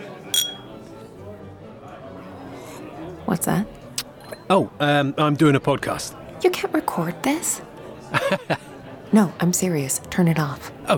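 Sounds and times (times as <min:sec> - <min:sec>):
low murmur of chatter: 0:00.0 - 0:10.9
drinking glasses clinking together in a toast: 0:00.3 - 0:00.8
speech: 0:03.3 - 0:03.8, 0:04.5 - 0:10.9
laughter: 0:07.9 - 0:09.0.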